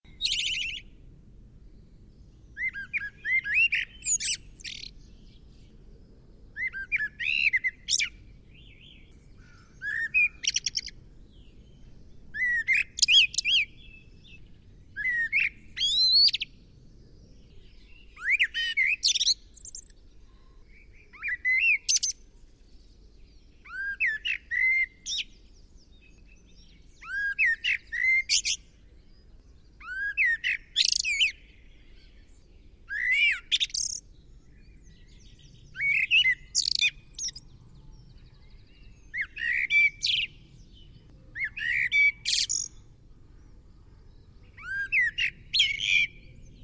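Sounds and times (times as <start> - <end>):
blackbird: 0.0 - 1.0, 1.7 - 46.6.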